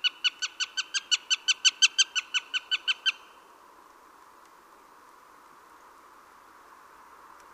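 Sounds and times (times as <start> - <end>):
Eurasian jay Garrulus glandarius calling: 0.0 - 3.4.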